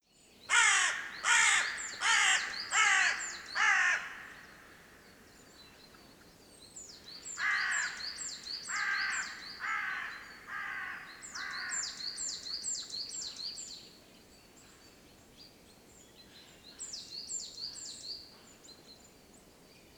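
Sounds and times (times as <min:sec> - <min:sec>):
Carrion crow Corvus corone giving harsh hoarse caws: 0:00.5 - 0:04.8, 0:07.4 - 0:08.0, 0:08.7 - 0:12.0.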